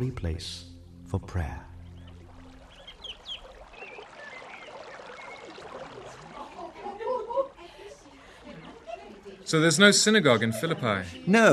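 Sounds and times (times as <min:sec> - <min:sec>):
speech: 0:00.0 - 0:01.7, 0:09.5 - 0:11.5
river water flowing outside the gates of Philippi in Macedonia: 0:01.7 - 0:10.1
laughter: 0:06.0 - 0:11.5.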